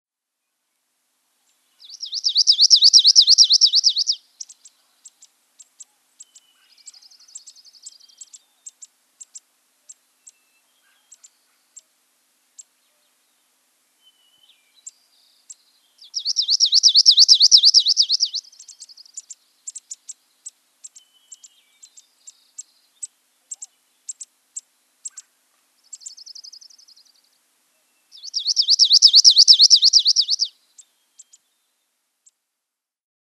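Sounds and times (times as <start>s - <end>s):
Palm Warbler: 1.4s - 11.9s, 12.5s - 32.4s.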